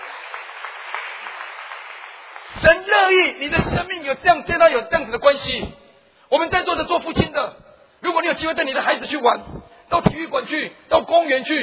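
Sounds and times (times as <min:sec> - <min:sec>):
church congregation clapping during a sermon: 0:00.0 - 0:03.2
speech: 0:02.6 - 0:11.6.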